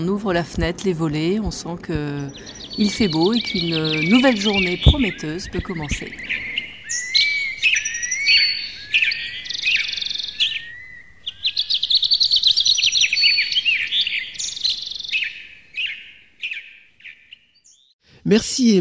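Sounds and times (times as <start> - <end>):
speech: 0.0 - 7.1, 18.3 - 18.7
several birds chirping and trilling in the morning: 0.0 - 18.0.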